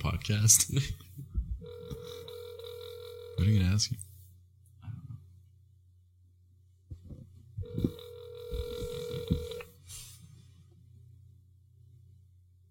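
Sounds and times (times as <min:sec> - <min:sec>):
speech: 0:00.1 - 0:01.0, 0:03.4 - 0:04.0
telephone ringing tone on speakerphone: 0:01.6 - 0:03.6, 0:07.6 - 0:09.7.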